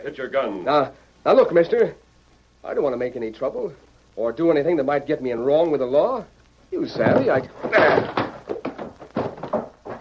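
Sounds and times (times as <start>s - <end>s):
speech: 0.0s - 2.0s, 2.6s - 8.2s
chair thrown: 7.0s - 9.9s
man running out the door: 7.0s - 9.9s.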